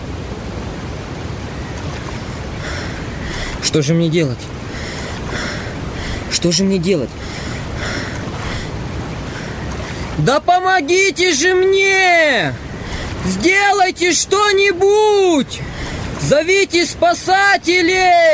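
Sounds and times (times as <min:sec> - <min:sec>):
roar of falling water from a waterfall: 0:00.0 - 0:18.3
speech: 0:03.6 - 0:04.6, 0:06.3 - 0:07.5, 0:10.2 - 0:18.3.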